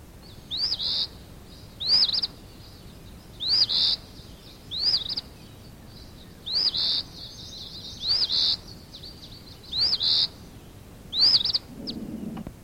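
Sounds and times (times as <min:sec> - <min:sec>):
bird calls of short high chirps: 0:00.2 - 0:12.4.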